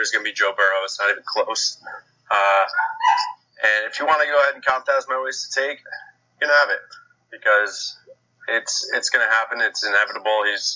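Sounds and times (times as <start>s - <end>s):
speech: 0.0s - 10.7s
dog barking with a honking tonal quality: 2.7s - 3.4s.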